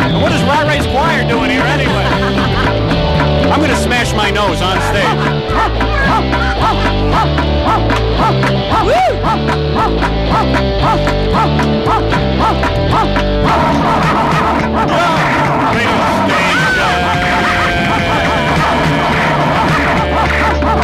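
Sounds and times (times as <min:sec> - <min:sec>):
dense droning music: 0:00.0 - 0:20.8
laughter: 0:00.0 - 0:20.8
speech: 0:00.2 - 0:02.1, 0:03.5 - 0:17.0
dog barking and yipping: 0:05.1 - 0:13.2.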